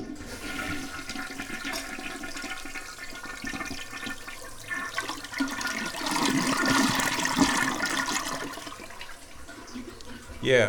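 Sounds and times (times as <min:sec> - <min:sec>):
toilet flushing: 0:00.0 - 0:10.6
speech: 0:10.5 - 0:10.6.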